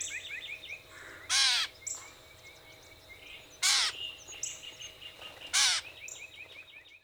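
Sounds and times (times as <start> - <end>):
other birds twittering: 0.0 - 7.0
gray catbird mewing: 1.0 - 1.7, 3.6 - 4.0, 5.5 - 5.8.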